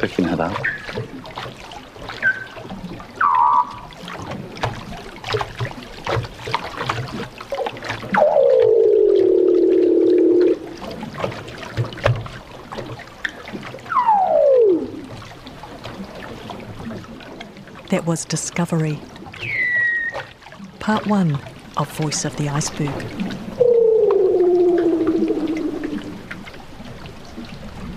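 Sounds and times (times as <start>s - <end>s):
speech: 0.0s - 0.7s, 17.9s - 19.1s, 20.9s - 23.6s
crackling, ticking underwater background: 0.0s - 27.9s
marine animals singing underwater around a boat's hull: 0.5s - 1.2s, 2.1s - 4.1s, 8.0s - 10.8s, 13.7s - 15.4s, 17.9s - 26.4s.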